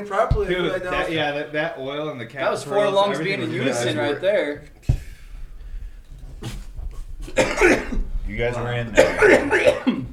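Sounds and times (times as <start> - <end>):
speech: 0.0 - 5.0, 7.3 - 10.0
low rumble: 4.8 - 9.9
person coughing after smoking weed: 7.3 - 8.1, 9.0 - 10.1.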